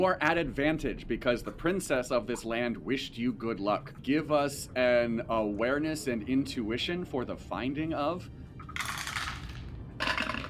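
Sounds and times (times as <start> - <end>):
speech: 0.0 - 8.4
tabletop role-playing game dice rattling and clattering across a hard surface: 8.7 - 10.4.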